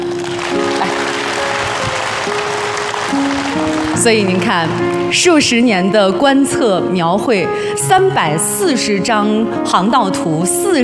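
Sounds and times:
large audience applauding: 0.0 - 5.2
speech: 4.0 - 10.8.

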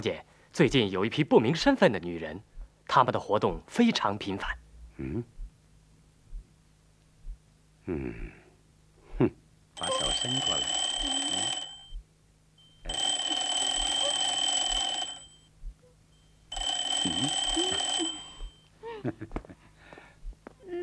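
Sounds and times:
speech: 0.0 - 5.4, 7.9 - 8.4, 9.2 - 10.8, 19.0 - 19.4
old-style telephone bell ringing: 9.8 - 11.9, 12.6 - 15.5, 16.5 - 18.7.

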